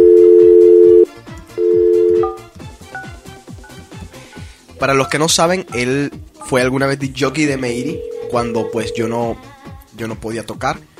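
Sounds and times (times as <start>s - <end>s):
ringback tone of an outgoing telephone call: 0.0s - 2.4s, 7.6s - 9.4s
speech: 4.8s - 10.9s.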